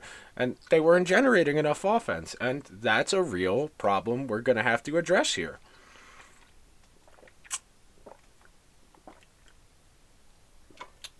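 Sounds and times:
speech: 0:00.4 - 0:05.7
person drinking water: 0:05.6 - 0:09.9, 0:10.5 - 0:11.1.

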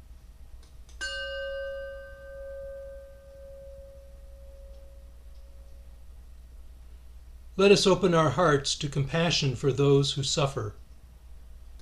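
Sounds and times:
low hum: 0:00.0 - 0:11.8
chime ringing: 0:01.0 - 0:06.0
speech: 0:07.6 - 0:10.8.

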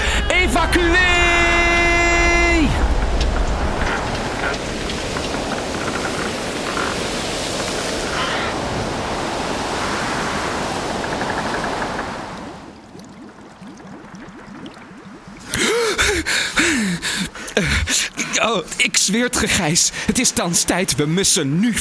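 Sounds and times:
water rushing in through cracks: 0:00.0 - 0:21.7
speech: 0:18.4 - 0:21.7.

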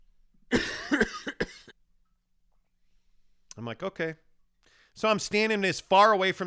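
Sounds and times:
person imitating a young child's hacking phlegmy cough: 0:00.5 - 0:01.7
speech: 0:03.7 - 0:04.3, 0:05.0 - 0:06.4.

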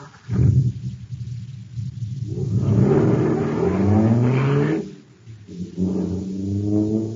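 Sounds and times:
supercharged jet car engine revving: 0:02.1 - 0:07.1.

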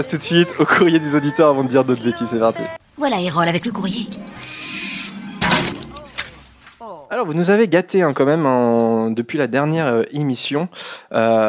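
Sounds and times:
speech: 0:00.0 - 0:04.6, 0:07.2 - 0:11.4
owl calls with short rising cries: 0:04.2 - 0:06.2.

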